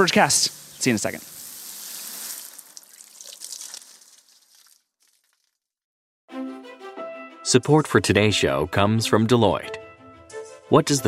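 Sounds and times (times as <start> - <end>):
speech: 0.0 - 1.4, 7.5 - 9.8, 10.7 - 11.0
water spraying from a hose watering the grass: 0.0 - 5.2.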